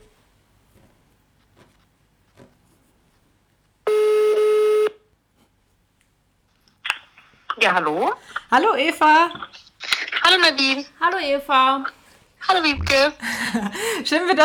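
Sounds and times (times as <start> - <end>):
electronic telephone ring tone as a call is placed: 3.9 - 5.0
speech: 7.6 - 14.4.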